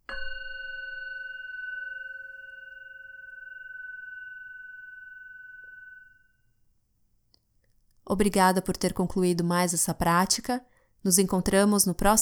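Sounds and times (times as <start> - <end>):
bell struck to signal the end of meditation: 0.0 - 6.3
speech: 8.1 - 12.2.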